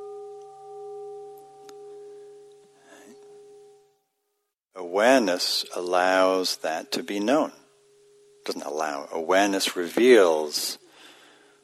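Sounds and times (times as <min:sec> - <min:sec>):
meditation bell ringing: 0:00.0 - 0:04.2, 0:06.9 - 0:09.4
speech: 0:04.9 - 0:07.6, 0:08.5 - 0:10.8.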